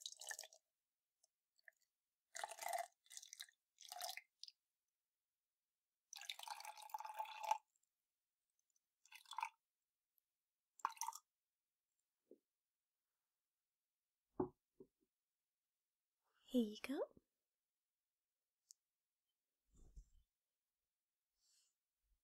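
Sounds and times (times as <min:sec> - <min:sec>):
water pouring into a glass for drinking: 0:00.0 - 0:00.7, 0:01.6 - 0:04.6, 0:06.1 - 0:07.9, 0:08.6 - 0:09.6, 0:10.8 - 0:11.3
speech: 0:16.5 - 0:17.1.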